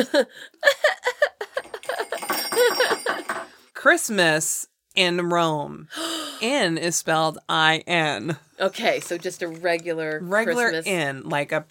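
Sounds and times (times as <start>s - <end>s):
speech: 0.0s - 1.1s, 3.8s - 11.6s
laughter: 0.0s - 3.3s
little Christmas bell ringing: 1.6s - 3.6s.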